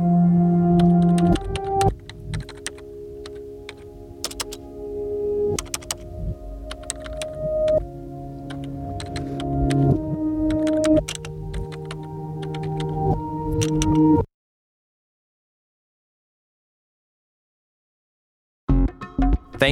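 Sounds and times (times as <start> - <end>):
low droning hum: 0.0 - 13.1
fingers pressing keyboard keys: 0.7 - 4.7, 5.5 - 14.2.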